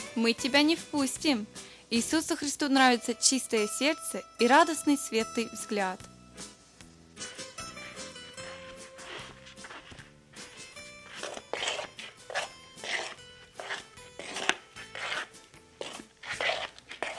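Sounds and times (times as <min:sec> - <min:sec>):
speech: 0:00.2 - 0:06.5
slow soft shuffling footsteps: 0:06.5 - 0:17.1.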